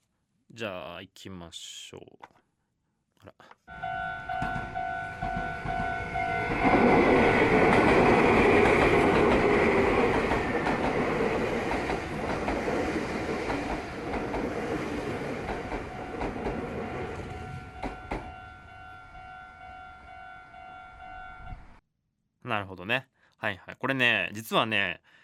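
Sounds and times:
speech: 0.6 - 2.4, 22.8 - 25.2
level crossing signal ringing: 3.7 - 6.9, 15.7 - 21.8
Meitetsu electric train arriving at Minami-Kagiya station in Tokai: 3.7 - 21.8.

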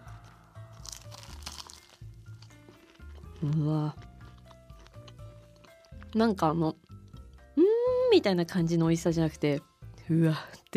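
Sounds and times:
biting into a caramel-coated baked banana pastry: 0.0 - 6.1
speech: 3.4 - 4.0, 6.1 - 6.8, 8.1 - 10.7.

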